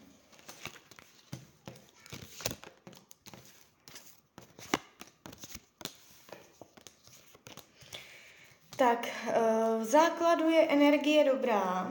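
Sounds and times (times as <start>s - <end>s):
tarot cards being turned over and handled during a card reading: 0.2s - 8.0s
speech: 8.8s - 11.9s.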